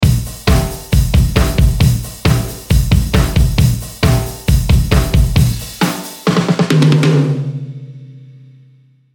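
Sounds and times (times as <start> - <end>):
drum pattern: 0.0 - 7.7.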